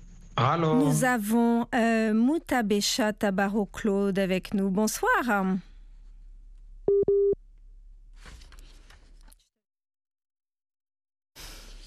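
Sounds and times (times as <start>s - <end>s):
speech: 0.4s - 5.7s
telephone busy tone on a dropped call line: 6.9s - 7.4s.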